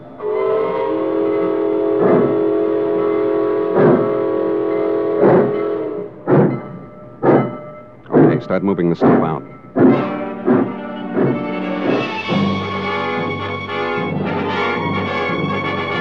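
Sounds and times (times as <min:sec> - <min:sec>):
freight train horn blast: 0:00.0 - 0:06.6, 0:09.8 - 0:15.9
freight train heavy rhythmic chugs and clanks: 0:00.0 - 0:15.9
speech: 0:08.5 - 0:10.0.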